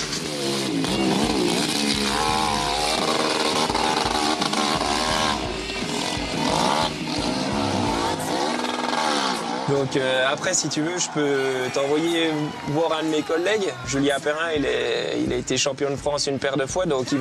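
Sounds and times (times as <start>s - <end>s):
hill-climb competition motorcycle engine revving through the gears: 0.0s - 12.8s
speech: 9.9s - 17.1s.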